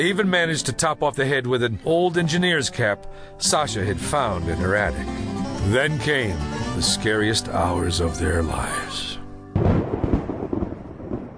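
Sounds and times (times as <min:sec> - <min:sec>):
speech: 0:00.0 - 0:09.2
thunder crack and rumble from a late-afternoon thunderstorm: 0:09.6 - 0:11.3.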